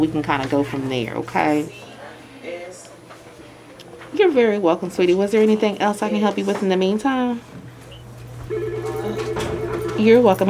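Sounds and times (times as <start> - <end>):
speech: 0.0 - 1.9, 4.1 - 7.6, 10.0 - 10.4
office telephone ringing with buzzy electronic tone: 8.4 - 10.4.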